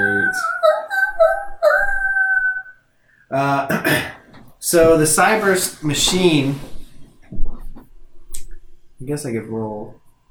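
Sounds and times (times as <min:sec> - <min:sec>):
rough voice-like burst: 0:00.0 - 0:01.5, 0:03.3 - 0:06.7
long wavering howls from all around: 0:00.0 - 0:02.8
speech: 0:04.7 - 0:06.7, 0:09.1 - 0:10.0.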